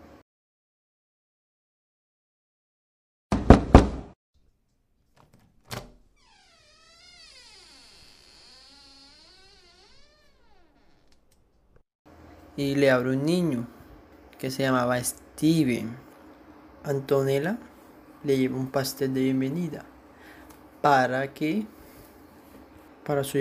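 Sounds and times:
woman knocking on the door of a house across the street: 3.3s - 4.2s
speech: 12.6s - 13.8s, 14.4s - 16.0s, 16.8s - 19.9s, 20.8s - 21.8s, 23.1s - 23.3s.

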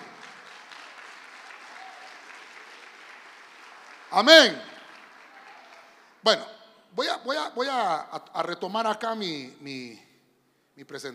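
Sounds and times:
audience clapping loudly: 0.0s - 6.2s
speech: 4.1s - 4.7s, 6.2s - 10.1s, 10.8s - 11.1s.

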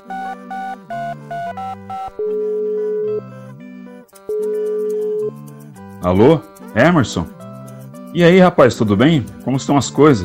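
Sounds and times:
outgoing WhatsApp call ringing tone: 0.0s - 3.6s, 4.2s - 5.4s
speech: 6.0s - 7.4s, 8.1s - 10.2s.

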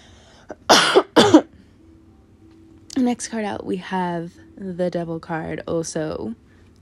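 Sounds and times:
person with throat issues coughing forcefully: 0.5s - 1.5s
speech: 3.0s - 6.4s.

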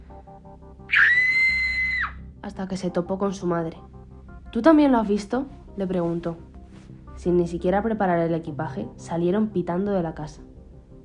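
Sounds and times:
speech: 0.2s - 1.2s, 2.4s - 6.5s, 7.2s - 10.5s
girl screaming: 0.9s - 2.2s.

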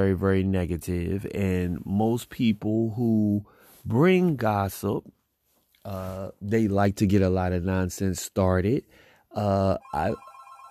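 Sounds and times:
speech: 0.0s - 5.2s, 5.8s - 10.3s
telephone ringing: 9.8s - 10.6s.

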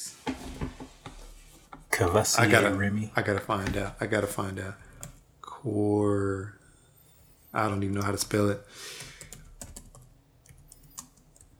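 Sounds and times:
speech: 2.0s - 4.9s, 5.6s - 6.6s, 7.6s - 9.0s
typing on a computer keyboard: 9.2s - 11.5s.

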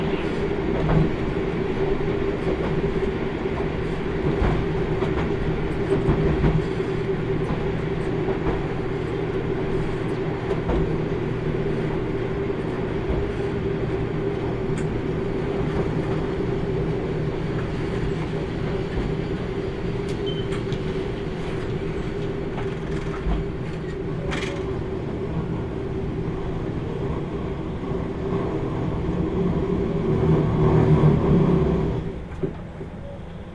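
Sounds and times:
JR Kyushu limited express train rumbling on the Hohi Main Line in Japan: 0.0s - 33.5s
faint clatter over rail joints: 2.4s - 11.1s, 12.6s - 16.4s, 17.5s - 24.8s.

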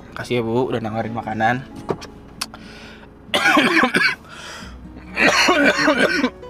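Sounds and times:
speech: 0.2s - 2.1s, 5.6s - 6.4s
person coughing in a car: 3.4s - 4.2s, 5.2s - 6.3s.

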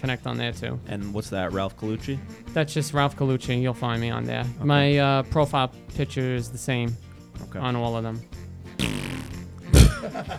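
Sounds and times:
speech: 0.0s - 8.4s, 10.0s - 10.3s
fart: 8.8s - 10.1s
laughter: 9.7s - 10.3s.

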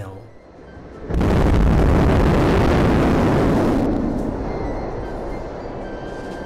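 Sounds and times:
low rumble after rocket engine shutdown: 1.0s - 5.8s
Super Heavy rocket booster engines roaring in a static fire test: 1.0s - 5.9s.

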